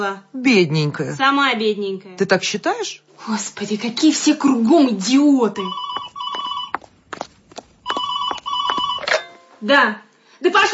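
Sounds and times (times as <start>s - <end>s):
speech: 0.0s - 5.8s, 9.6s - 10.7s
telephone ringing in trilling warbling bursts: 5.6s - 6.9s, 7.8s - 9.6s.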